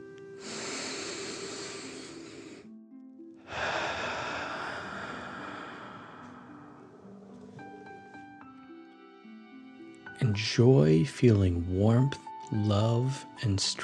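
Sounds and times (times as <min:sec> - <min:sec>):
deep dragon breath from a guided meditation breathing exercise: 0:00.4 - 0:02.7, 0:03.4 - 0:07.2
speech: 0:10.2 - 0:13.8.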